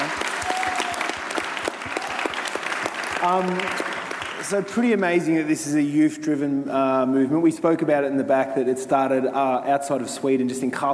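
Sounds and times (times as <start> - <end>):
crowd applauding: 0.0 - 4.9
speech: 3.2 - 10.9.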